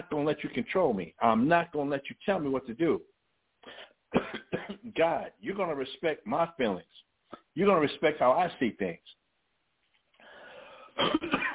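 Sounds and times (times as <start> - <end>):
speech: 0.0 - 7.0, 7.6 - 9.2, 11.0 - 11.3
person coughing on a chia seed stuck in the throat: 4.1 - 4.9, 11.0 - 11.5.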